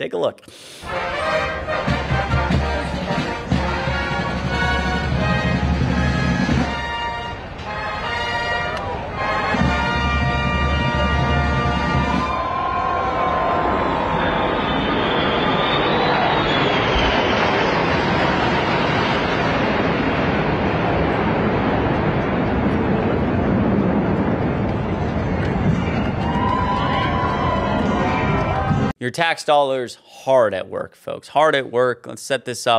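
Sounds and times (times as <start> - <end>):
speech: 0.0 - 1.6, 29.0 - 32.7
jet aircraft flying past with a whining roar: 0.9 - 28.9.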